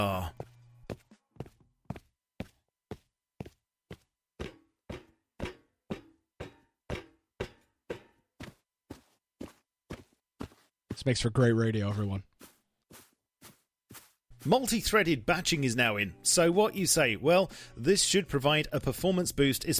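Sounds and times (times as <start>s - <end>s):
crisp video game footstep sound effects: 0.4s - 15.0s
speech: 11.0s - 12.3s, 14.4s - 19.7s.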